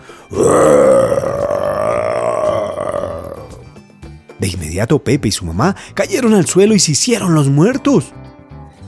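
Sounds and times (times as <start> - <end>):
speech: 0.3 - 0.7, 4.4 - 8.2
human voice imitating a fierce bear growl: 0.3 - 3.7.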